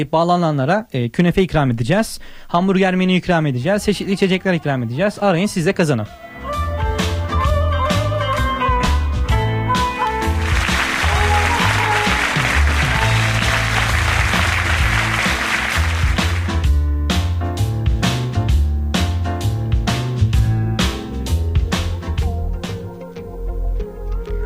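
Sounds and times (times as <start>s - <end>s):
speech: 0.0s - 6.2s
song with steady beat and deep bass: 6.2s - 24.4s.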